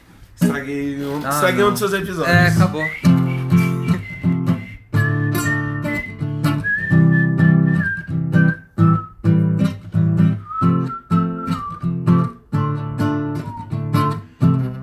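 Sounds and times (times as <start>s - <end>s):
speech: 0.6s - 3.2s
person whistling a melody: 2.3s - 9.6s, 10.3s - 14.6s.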